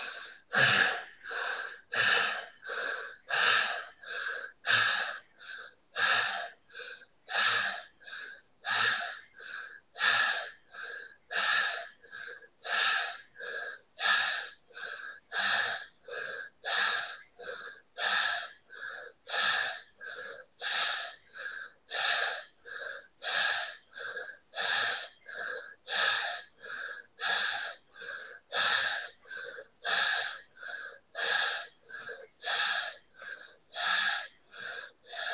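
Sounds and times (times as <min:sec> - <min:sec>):
forceful bhastrika yoga breathing through the nose: 0:00.0 - 0:35.3.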